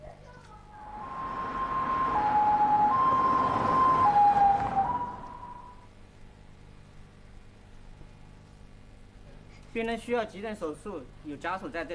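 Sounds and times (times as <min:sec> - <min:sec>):
low rumble of traffic: 0:00.0 - 0:06.2
ambulance siren wailing in two-tone alternation: 0:00.8 - 0:05.8
speech: 0:09.8 - 0:11.9.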